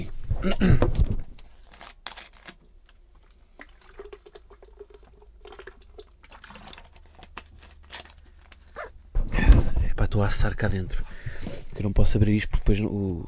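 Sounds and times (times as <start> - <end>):
speech: 0.0 - 1.1, 10.2 - 13.2
plastic bottle being handled with clicks, taps and crinkles: 0.8 - 3.3, 6.5 - 8.7
person sipping water from a plastic bottle: 2.9 - 9.0.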